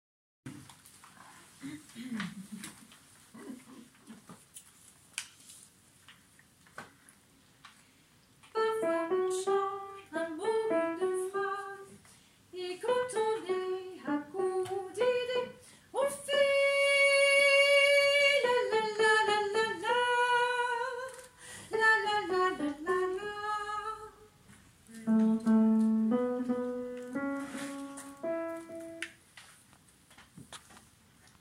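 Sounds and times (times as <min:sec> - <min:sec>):
soprano voices: 0:08.5 - 0:24.4, 0:25.0 - 0:29.0.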